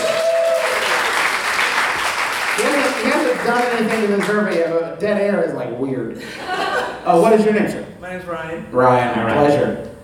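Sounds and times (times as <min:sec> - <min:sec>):
crowd applauding: 0:00.0 - 0:04.7
speech: 0:03.5 - 0:09.9
laughter: 0:06.2 - 0:07.2.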